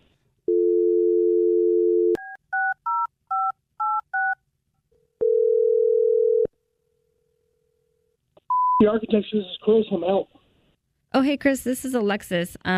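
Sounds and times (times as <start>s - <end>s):
telephone ringing tone: 0.5s - 2.7s, 5.2s - 6.5s
telephone dial tone: 0.5s - 4.4s, 5.2s - 6.5s
speech: 8.8s - 10.4s, 11.1s - 12.7s.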